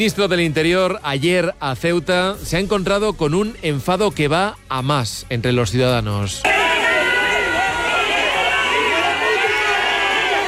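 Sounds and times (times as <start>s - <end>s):
speech: 0.0s - 6.6s
large angry crowd in Ceuta booing and shouting: 6.4s - 10.4s.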